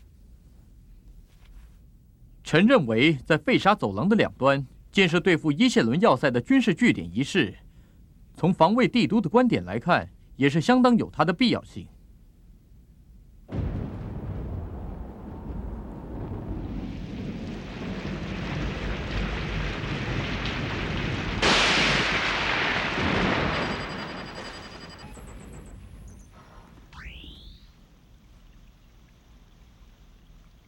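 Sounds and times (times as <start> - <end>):
speech: 2.5 - 7.6, 8.4 - 11.9
thunder on a stormy night: 13.5 - 26.9
heavy rain on a stormy night: 13.6 - 25.3.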